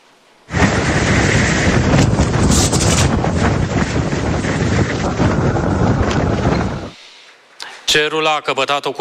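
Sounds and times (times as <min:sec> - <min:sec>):
strong sandstorm wind buffeting the microphone: 0:00.5 - 0:07.0
speech: 0:07.9 - 0:08.9.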